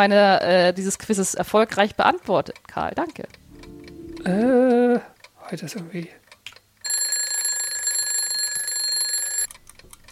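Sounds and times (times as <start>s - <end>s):
speech: 0.0s - 3.4s, 4.2s - 6.2s
alarm clock ringing with shrill electronic tone: 6.8s - 9.5s.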